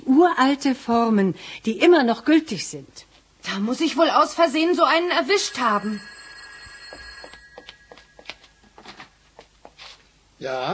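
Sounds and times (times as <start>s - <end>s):
speech: 0.2s - 6.2s, 10.4s - 10.7s
old-fashioned telephone bell ringing: 4.4s - 9.4s.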